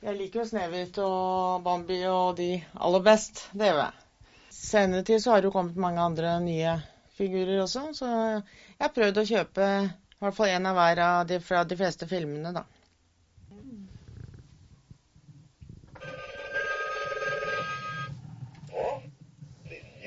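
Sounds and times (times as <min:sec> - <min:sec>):
speech: 0:00.0 - 0:04.0, 0:04.6 - 0:12.8
novelty telephone ringing: 0:16.0 - 0:19.1.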